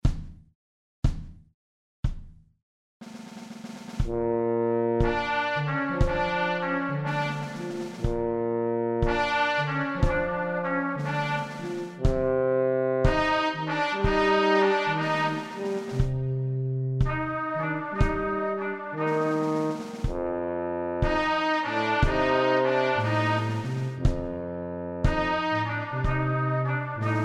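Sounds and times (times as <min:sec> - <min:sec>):
drums: 0:00.0 - 0:00.4, 0:01.1 - 0:01.4, 0:02.0 - 0:02.4, 0:03.0 - 0:04.4, 0:05.0 - 0:08.4, 0:09.0 - 0:12.4, 0:13.0 - 0:14.4, 0:15.3 - 0:16.3, 0:17.0 - 0:20.4, 0:21.0 - 0:22.4, 0:23.0 - 0:24.4, 0:25.0 - 0:26.4, 0:27.0 - 0:27.2
trumpet: 0:04.0 - 0:27.2
tuba: 0:04.0 - 0:27.2.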